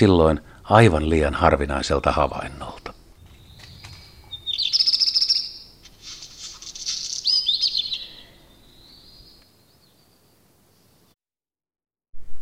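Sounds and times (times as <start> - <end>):
speech: 0.0 - 3.0
black redstart singing: 2.8 - 5.8, 6.6 - 10.2.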